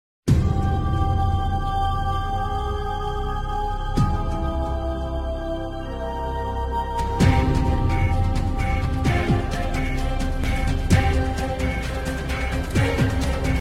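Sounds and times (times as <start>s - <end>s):
running music: 0.3s - 13.6s.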